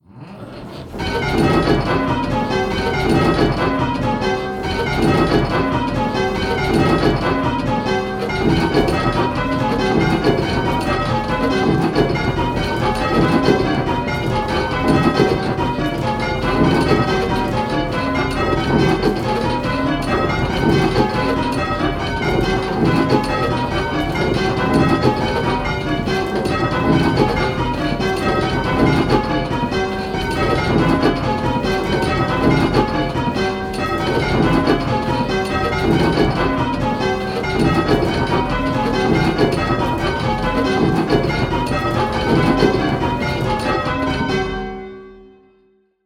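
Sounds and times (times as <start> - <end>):
bells ringing triples: 1.0 - 45.4.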